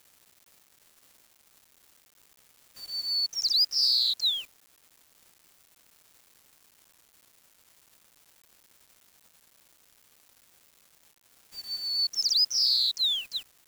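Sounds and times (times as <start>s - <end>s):
bird song in high, clear notes: 2.8s - 4.4s, 11.6s - 13.4s.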